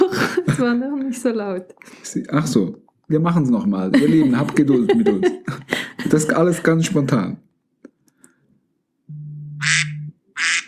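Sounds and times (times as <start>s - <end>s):
laughter: 0.0s - 0.8s, 3.8s - 7.3s
low steady hum: 0.0s - 10.4s
speech: 0.6s - 7.5s
timer alarm set to a duck quacking sound: 9.6s - 10.6s.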